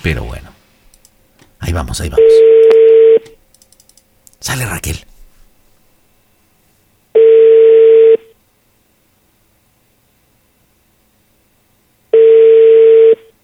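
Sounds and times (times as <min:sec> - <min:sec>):
speech: 0:00.0 - 0:00.4, 0:01.7 - 0:02.8, 0:04.4 - 0:05.1
outgoing telephone call ringing on a line that goes to voicemail: 0:02.2 - 0:03.4, 0:07.2 - 0:08.3, 0:12.1 - 0:13.3.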